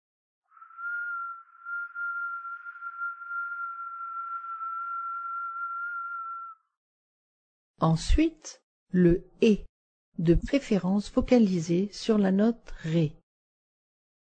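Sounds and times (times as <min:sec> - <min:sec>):
long delicate whistle imitating a bird's call: 0:00.5 - 0:06.7
speech: 0:07.8 - 0:13.2.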